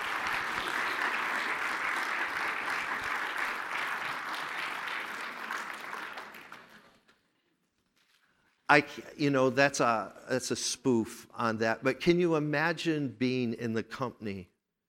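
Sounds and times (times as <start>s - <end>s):
audience applause: 0.0s - 7.1s
speech: 8.7s - 14.5s.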